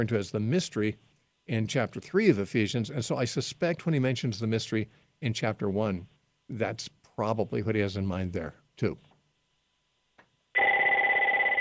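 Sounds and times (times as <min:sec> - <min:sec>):
speech: 0:00.0 - 0:09.1
telephone ringing with an electronic trill: 0:10.6 - 0:11.6.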